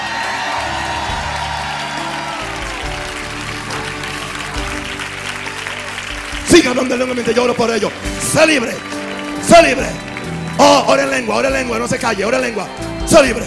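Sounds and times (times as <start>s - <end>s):
church congregation cheering and whooping: 0.0s - 6.3s
church congregation shouting a cry of victory: 0.0s - 7.4s
church congregation applauding: 0.0s - 13.4s
speech: 6.6s - 8.9s, 9.5s - 13.4s.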